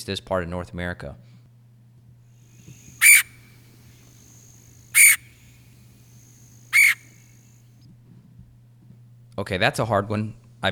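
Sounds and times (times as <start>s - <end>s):
speech: 0.0s - 1.3s, 9.4s - 10.7s
low steady hum: 0.2s - 10.7s
red-headed woodpecker calling: 2.5s - 7.4s.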